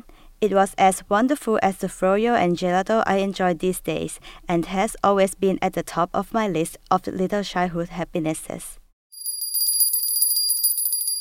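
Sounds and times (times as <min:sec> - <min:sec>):
speech: 0:00.4 - 0:08.8
ice cream vendor's small hand bell ringing: 0:09.2 - 0:11.1.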